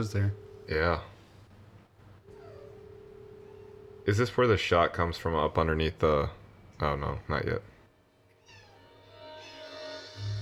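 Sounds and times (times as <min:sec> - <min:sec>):
speech: 0:00.0 - 0:01.1, 0:04.0 - 0:07.7
female cat meowing: 0:02.3 - 0:04.0, 0:08.4 - 0:09.8.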